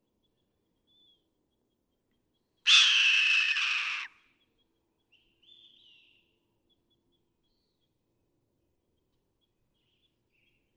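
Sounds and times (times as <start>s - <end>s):
red-tailed hawk giving a harsh hoarse scream: 2.7s - 4.1s.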